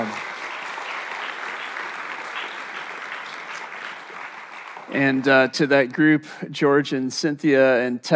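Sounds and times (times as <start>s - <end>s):
audience applause for a children's praise choir: 0.0s - 5.5s
speech: 4.9s - 8.1s.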